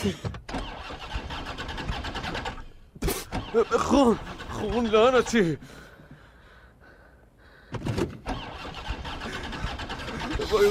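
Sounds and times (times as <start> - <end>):
speech: 0.0 - 0.5, 3.6 - 5.8
car engine starting with a rhythmic throbbing churn: 0.0 - 5.8, 7.9 - 10.6.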